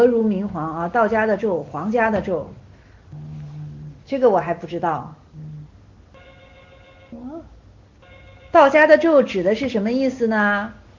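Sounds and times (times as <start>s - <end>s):
speech: 0.0s - 3.3s, 4.1s - 5.2s, 8.5s - 10.8s
telephone ringing with an electronic trill: 6.2s - 7.3s, 8.0s - 9.1s.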